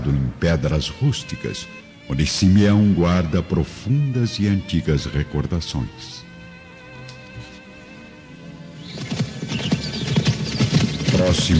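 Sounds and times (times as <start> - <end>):
speech: 0.4 - 6.2, 11.3 - 11.5
ridden black horse hooves clip-clopping: 8.8 - 11.5.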